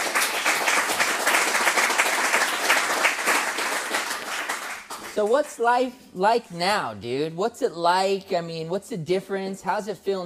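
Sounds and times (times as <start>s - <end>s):
audience applause cheering a guest: 0.0s - 5.2s
speech: 5.2s - 10.2s.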